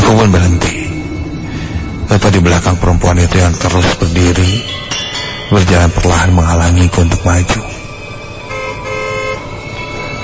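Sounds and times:
speech: 0.1 - 0.8, 2.1 - 4.9, 5.5 - 7.8
car horn blaring on a road: 8.4 - 9.7.

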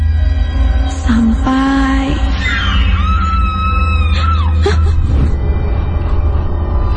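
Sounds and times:
low rumbling background: 0.0 - 6.9
speech: 1.1 - 2.6
sudden high wavering scream: 2.4 - 4.6.

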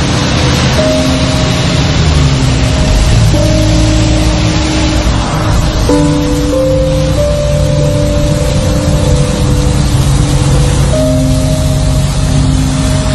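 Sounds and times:
engine noise inside an angkot shared minibus during a ride: 0.0 - 13.1.

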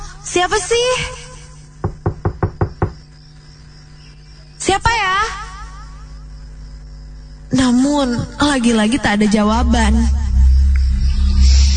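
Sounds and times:
low steady hum: 0.0 - 11.7
speech: 0.4 - 1.2, 4.7 - 5.4, 7.5 - 10.2
knocking on a door: 1.8 - 3.1.

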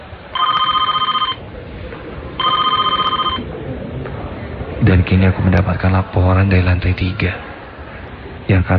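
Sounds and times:
low hum: 0.0 - 8.7
telephone ringing with a bright trilling tone: 0.3 - 1.4, 2.4 - 3.4
speech: 5.0 - 7.5, 8.5 - 8.7.

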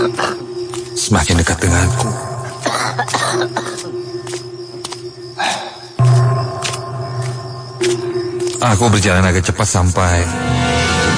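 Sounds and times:
steady low hum: 0.0 - 5.3, 6.0 - 9.7
speech: 1.0 - 2.3, 3.0 - 4.2, 8.6 - 10.7
painful harsh strained coughing: 2.6 - 3.9.

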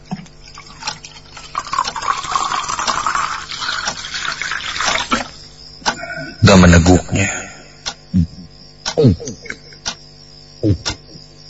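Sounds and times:
water poured into a drinking glass in a kitchen: 0.4 - 5.3
speech: 6.6 - 7.4, 9.0 - 9.2.

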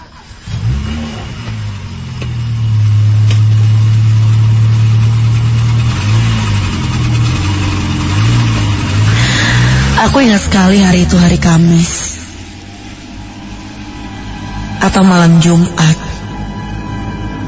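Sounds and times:
car engine accelerating as the driver steps on the gas: 0.0 - 17.4
speech: 10.0 - 12.0, 14.9 - 16.0.

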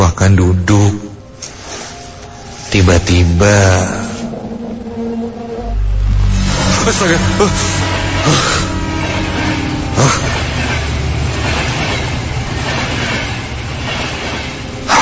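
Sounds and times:
speech: 0.2 - 1.0, 2.7 - 4.0, 6.8 - 8.7, 10.0 - 10.4
train rumbling past on railway tracks: 1.5 - 15.0
train wheels clattering over rail joints: 7.4 - 15.0.

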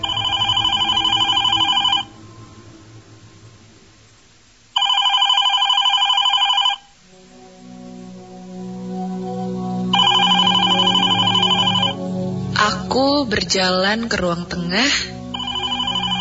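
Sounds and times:
landline home telephone ringing with electronic trill: 0.0 - 2.1, 4.8 - 7.0, 9.9 - 12.0, 15.3 - 16.1
low hum: 0.0 - 16.1
speech: 13.3 - 15.2.

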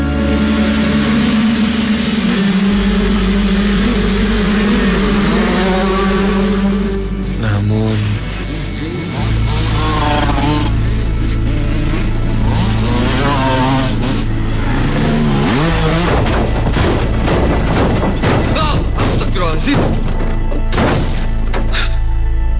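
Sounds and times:
motorcycle with very loud exhaust overtaking on a bend: 0.0 - 22.5
motorcycle crashing into a car: 15.1 - 21.8.

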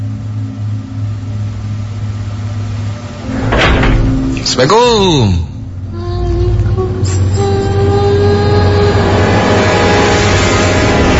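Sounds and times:
low mechanical hum: 0.0 - 11.1
room door at the end of a corridor being pulled open: 3.2 - 4.7
speech: 4.6 - 5.5.

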